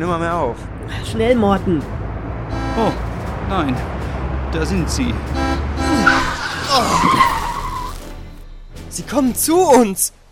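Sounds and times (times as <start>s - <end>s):
speech: 0.0s - 2.0s, 2.8s - 5.4s, 6.8s - 7.4s, 9.0s - 10.2s
Mercedes car tires screeching while accelerating hard: 0.0s - 9.2s
Mercedes car engine rumble while accelerating hard: 0.0s - 10.3s.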